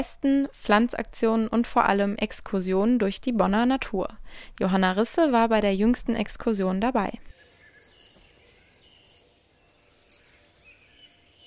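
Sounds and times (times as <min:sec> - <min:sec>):
speech: 0:00.0 - 0:07.3
faint soft forest ambience: 0:00.0 - 0:11.4
bright fast-trilling bird songs in autumn forest nature reserve: 0:07.2 - 0:11.4.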